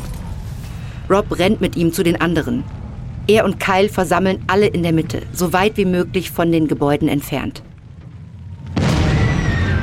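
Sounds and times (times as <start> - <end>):
quiet rumble: 0.0 - 9.6
fire raging at a tank depot: 0.0 - 9.8
speech: 1.1 - 7.7
petrol tanks exploding at a tank depot: 8.5 - 9.8.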